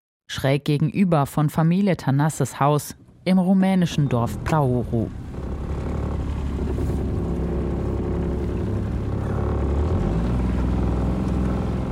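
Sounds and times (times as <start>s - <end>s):
speech: 0.3s - 5.2s
small wooden family motorboat engine droning on the Danube: 3.8s - 11.9s.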